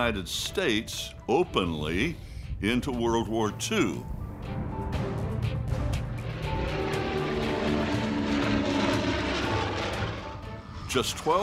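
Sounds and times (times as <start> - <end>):
speech: 0.0 - 4.6, 10.9 - 11.4
propeller fighter plane engines roaring overhead: 4.0 - 11.4.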